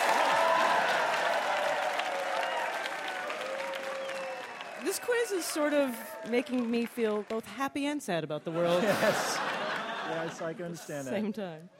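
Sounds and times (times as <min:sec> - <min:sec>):
applause from many hands: 0:00.0 - 0:08.0, 0:09.3 - 0:10.1
speech: 0:04.8 - 0:09.5, 0:10.1 - 0:11.7
laughter: 0:08.4 - 0:11.1.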